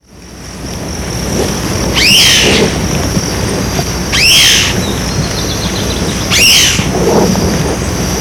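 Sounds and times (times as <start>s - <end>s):
large-tailed antshrike calling in Itatiaia National Park, Rio de Janeiro, Brazil: 1.9s - 8.0s.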